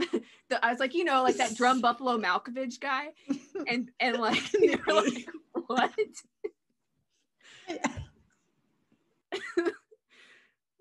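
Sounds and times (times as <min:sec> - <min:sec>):
speech: 0:00.7 - 0:06.3, 0:07.7 - 0:08.0
person coughing harshly: 0:07.7 - 0:08.2.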